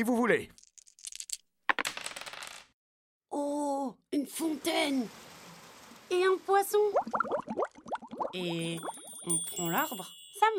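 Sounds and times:
speech: 0.0 - 0.6, 3.9 - 5.3, 6.1 - 7.6, 8.3 - 10.5
dice shaken and tossed onto a hard surface: 0.5 - 2.7.

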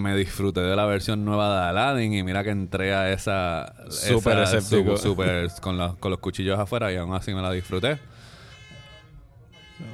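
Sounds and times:
speech: 0.0 - 8.3
car alarm blaring outside: 7.5 - 9.9.

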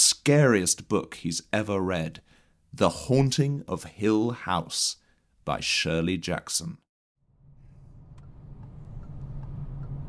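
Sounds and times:
speech: 0.0 - 6.8
car driving on the road heard from inside the cabin: 7.4 - 10.0.

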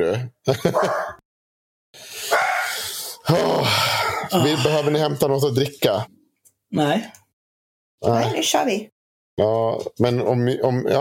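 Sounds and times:
speech: 0.0 - 1.1, 3.3 - 7.2, 8.0 - 10.9
laughter: 0.5 - 1.2
dogs barking and yapping: 0.6 - 1.2.

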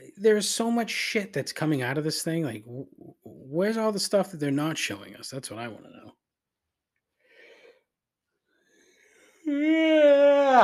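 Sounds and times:
speech: 0.2 - 6.0, 9.5 - 10.6
person yawning: 9.4 - 10.6.

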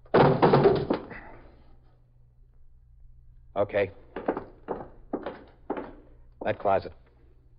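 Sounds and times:
door being kicked open: 0.1 - 1.1
speech: 3.6 - 4.0, 6.4 - 7.0.

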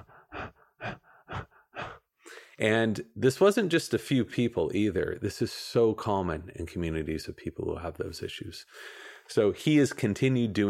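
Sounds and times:
person demonstrating habitual rapid gasping breaths: 0.0 - 2.6
speech: 2.6 - 10.6.

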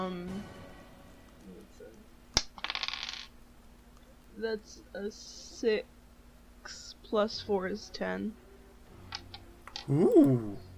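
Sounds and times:
eight-sided die clattering onto a hard tabletop: 2.4 - 3.3
speech: 4.4 - 6.0, 6.6 - 8.4, 9.8 - 10.7
person murmuring: 9.9 - 10.7.

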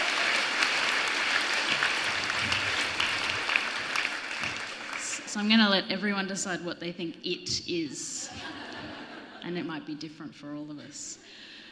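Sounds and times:
crowd applauding: 0.0 - 5.6
speech: 5.4 - 8.6, 9.4 - 11.5
laughter: 8.3 - 9.4.

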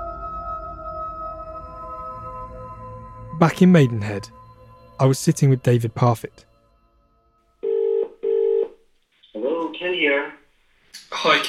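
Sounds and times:
speech: 3.4 - 4.4, 5.0 - 6.5, 11.0 - 11.4
telephone double-ring tone on the line: 7.6 - 8.8.

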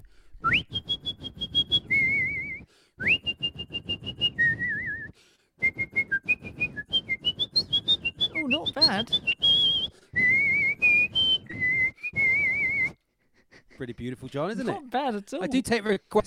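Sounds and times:
person whistling an operatic soprano aria: 0.4 - 13.0
speech: 8.9 - 9.3, 13.8 - 16.2.

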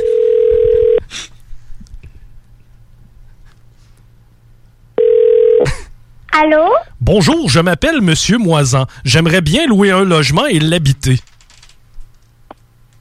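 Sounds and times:
telephone ringback tone on an outgoing call: 0.0 - 1.0, 5.0 - 5.7
speech: 6.4 - 11.3.

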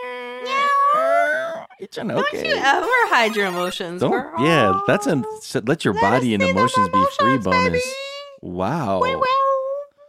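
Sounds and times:
cat meowing: 0.4 - 1.4, 4.2 - 5.3, 6.0 - 8.0, 8.8 - 9.8
speech: 1.8 - 9.4.

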